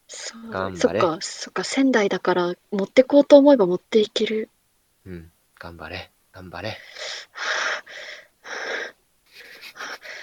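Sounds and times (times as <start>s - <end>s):
speech: 0.3s - 8.9s
heavy breathy panting of someone out of breath: 9.4s - 10.2s.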